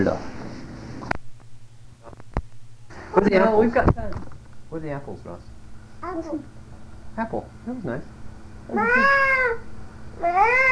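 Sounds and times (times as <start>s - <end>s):
speech: 0.0s - 0.3s, 3.1s - 6.6s, 7.2s - 10.6s
cat meowing: 8.7s - 10.6s.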